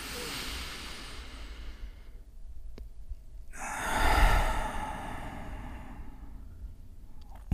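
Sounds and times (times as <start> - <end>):
strong forceful breathy exhale: 0.0 - 2.2, 3.5 - 6.6
long airy inhale: 0.0 - 2.3, 3.5 - 6.8.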